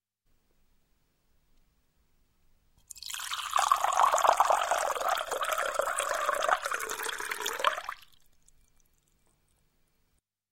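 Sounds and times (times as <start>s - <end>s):
glass of water: 2.8s - 9.4s.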